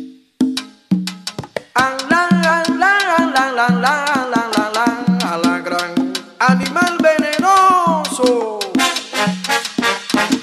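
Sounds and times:
salsa cover version with piano and percussion: 0.6s - 10.4s
horns over salsa rhythm: 8.8s - 10.4s.

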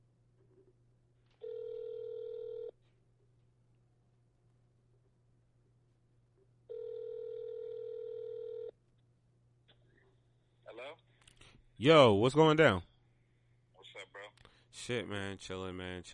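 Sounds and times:
faint low hum: 0.0s - 16.1s
electronic ringing tone of a phone line: 1.4s - 2.7s, 6.7s - 8.7s
speech: 11.8s - 12.9s, 14.8s - 16.1s.

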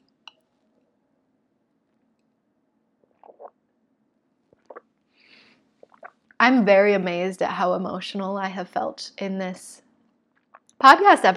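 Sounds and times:
person sipping and swallowing water: 3.0s - 3.6s, 4.5s - 5.0s, 5.7s - 6.4s, 10.4s - 10.8s
speech: 6.4s - 9.8s, 10.8s - 11.3s.

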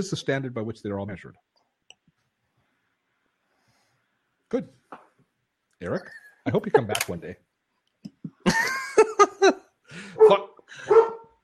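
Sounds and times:
speech: 0.0s - 1.6s, 4.5s - 4.8s, 5.8s - 7.4s
laughter: 8.1s - 10.2s
dog barking: 10.2s - 11.4s.

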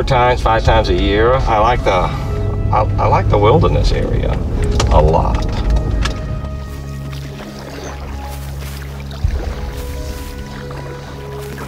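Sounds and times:
speech: 0.0s - 5.6s
low hum: 0.0s - 11.6s
steady river water noise: 0.0s - 11.6s
paddle splashing and dipping in river water: 5.8s - 11.6s.

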